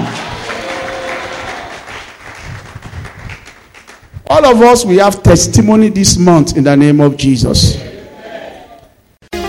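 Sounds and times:
audience clapping: 0.0 - 4.2
speech: 4.3 - 7.9.

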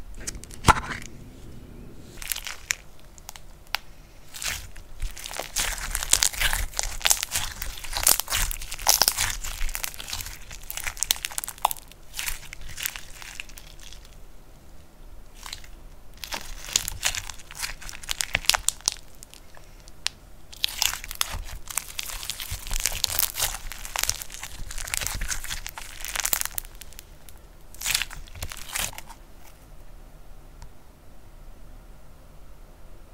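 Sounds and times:
low steady hum: 0.1 - 3.2
crackly crunching of slime being pressed and poked: 2.2 - 14.2, 15.4 - 29.2.

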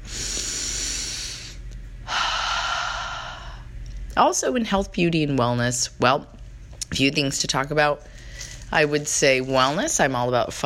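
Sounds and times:
deep breathing in and out: 0.0 - 3.8
speech: 4.2 - 8.1, 8.7 - 10.6.

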